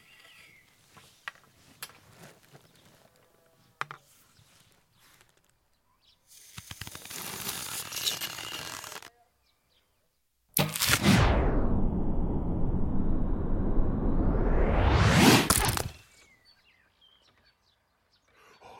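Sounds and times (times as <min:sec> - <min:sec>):
arrow splitting crack as it splits another arrow: 0:10.6 - 0:12.3, 0:14.7 - 0:16.0
arrow whooshing in flight: 0:10.6 - 0:16.0.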